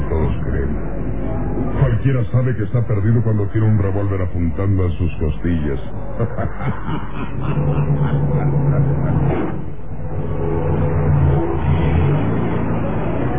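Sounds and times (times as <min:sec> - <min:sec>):
music-like tones: 0:00.0 - 0:13.3
speech: 0:02.0 - 0:09.6
laughter: 0:05.7 - 0:10.0
taxi engine starting and speeding away through busy city avenues: 0:08.2 - 0:13.3.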